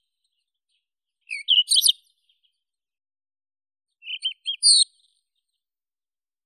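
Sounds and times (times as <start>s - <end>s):
Cercotrichas galactotes rufous bush robin singing: 1.3s - 2.0s, 4.1s - 4.9s.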